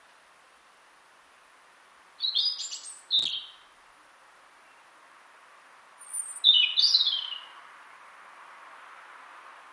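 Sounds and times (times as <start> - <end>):
European robin singing: 2.2 - 3.8, 4.6 - 5.0, 5.9 - 7.7.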